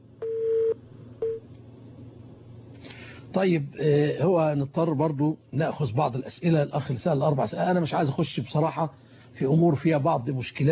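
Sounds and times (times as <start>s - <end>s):
low hiss: 0.0s - 10.7s
telephone line tone beeps as a caller is connected: 0.2s - 1.4s
speech: 3.4s - 10.7s.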